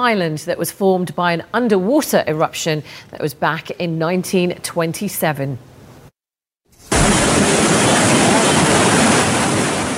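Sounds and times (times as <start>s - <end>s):
speech: 0.0s - 5.7s
fast-moving floodwater rushing: 6.9s - 9.9s.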